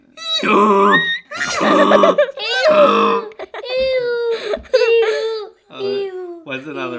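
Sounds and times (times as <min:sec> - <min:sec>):
person imitating a donkey bray: 0:00.2 - 0:03.4
speech: 0:00.4 - 0:00.8, 0:01.8 - 0:04.0, 0:06.6 - 0:06.9
laughter: 0:01.3 - 0:05.4.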